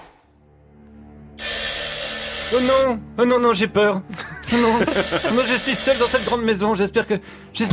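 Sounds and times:
telephone ringing: 0:01.4 - 0:03.0, 0:04.7 - 0:06.4
speech: 0:02.5 - 0:07.7
laughter: 0:04.1 - 0:05.9.

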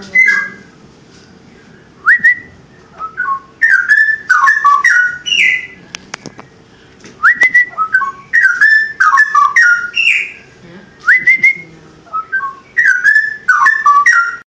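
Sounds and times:
Oriental magpie-robin singing rich whistled phrases: 0:00.1 - 0:00.7, 0:02.0 - 0:05.8, 0:07.2 - 0:10.5, 0:11.1 - 0:14.4.

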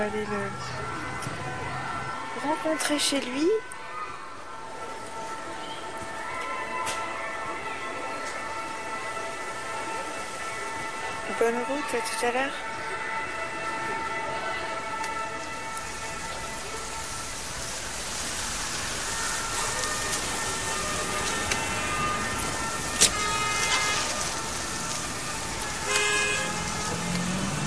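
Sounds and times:
speech: 0:00.0 - 0:01.0, 0:02.4 - 0:03.8, 0:11.4 - 0:12.7
dense city road traffic in Paris on a Sunday evening: 0:00.0 - 0:27.6
car horns honking: 0:19.4 - 0:27.6.

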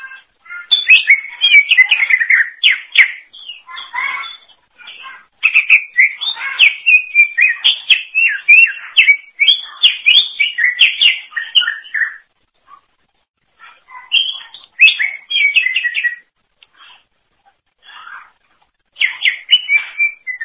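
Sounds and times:
Greater green leafbird song of bright whistles and chatter: 0:00.5 - 0:04.4, 0:05.4 - 0:12.3, 0:14.1 - 0:16.3, 0:19.0 - 0:20.4.

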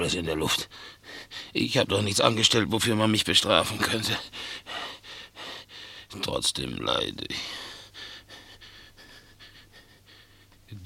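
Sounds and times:
speech: 0:00.0 - 0:04.9, 0:06.1 - 0:07.7
labored restless breathing of someone unable to sleep: 0:00.7 - 0:01.6, 0:04.2 - 0:06.1, 0:07.4 - 0:10.7.

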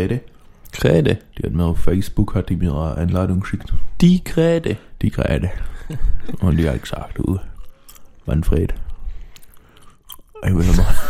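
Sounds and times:
speech: 0:00.0 - 0:07.5, 0:08.3 - 0:08.8, 0:10.4 - 0:11.0
laughter: 0:05.6 - 0:07.0, 0:10.4 - 0:11.0
loud wet smacking chewing of gummy bears: 0:05.6 - 0:10.4.

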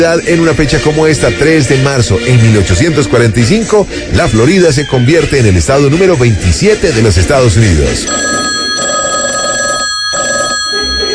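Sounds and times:
speech: 0:00.0 - 0:08.9
telephone bell ringing: 0:08.0 - 0:11.1.

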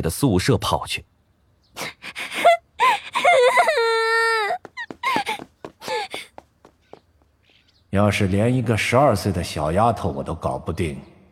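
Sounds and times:
speech: 0:00.0 - 0:01.1, 0:07.9 - 0:11.1
girl bursting into tears and crying: 0:01.8 - 0:06.4.

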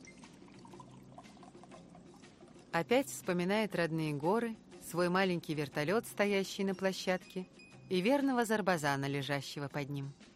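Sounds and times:
mineral water poured from a bottle into a glass: 0:00.0 - 0:02.8
speech: 0:02.8 - 0:10.2.

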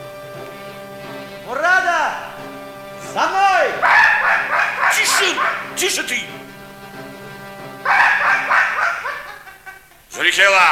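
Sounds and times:
low steady hum: 0:00.0 - 0:10.3
laughter: 0:01.4 - 0:10.7
big dog barking on a hunt: 0:03.0 - 0:06.8, 0:07.8 - 0:09.8
speech: 0:05.2 - 0:06.6, 0:10.2 - 0:10.7.

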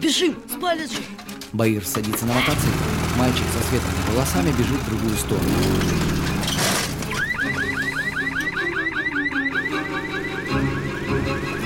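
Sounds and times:
speech: 0:00.0 - 0:06.6
police car alarm electronic chirps: 0:07.1 - 0:11.4.

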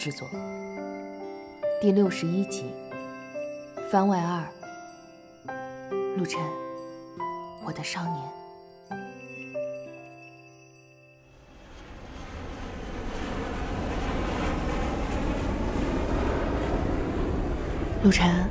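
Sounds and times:
speech: 0:00.0 - 0:00.6, 0:01.8 - 0:02.8, 0:03.9 - 0:04.6, 0:06.2 - 0:06.6, 0:07.6 - 0:09.0, 0:18.0 - 0:18.5
faint tinkling tones: 0:00.0 - 0:12.2
airplane cabin noise during flight: 0:11.5 - 0:18.5.

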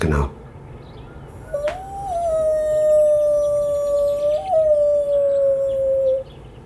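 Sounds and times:
man imitating a wolf howl: 0:01.4 - 0:06.3.

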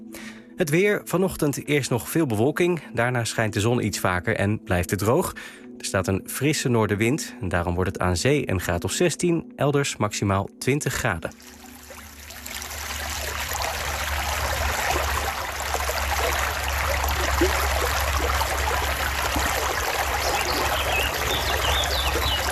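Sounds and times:
speech: 0:00.6 - 0:11.7
water of a well-filled flowing brook or stream: 0:11.3 - 0:22.5.

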